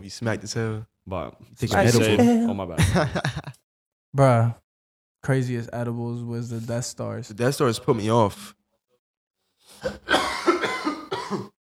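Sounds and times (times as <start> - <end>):
speech: 0.0 - 3.5, 4.2 - 4.6, 5.2 - 8.6, 11.3 - 11.5
laughter: 2.8 - 3.6
harsh coughing fit: 9.7 - 11.6.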